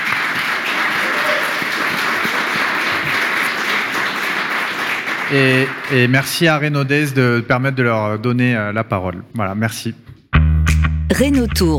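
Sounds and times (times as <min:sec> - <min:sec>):
audience applause: 0:00.0 - 0:06.8
speech: 0:05.3 - 0:10.1, 0:11.2 - 0:11.7.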